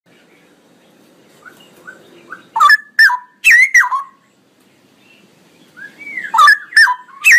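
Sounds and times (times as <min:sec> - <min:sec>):
male straw-headed bulbul whistled song: 0:01.4 - 0:04.2, 0:05.6 - 0:07.3.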